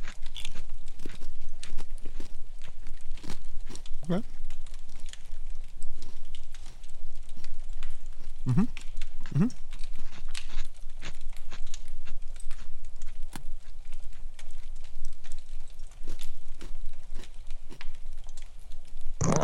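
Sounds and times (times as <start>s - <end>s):
someone biting and chewing a Snickerdoodle Oreo sandwich cookie: 0.0s - 19.4s
speech: 4.1s - 4.4s, 8.5s - 8.8s
brief vocal sounds: 8.5s - 8.7s, 9.3s - 9.5s.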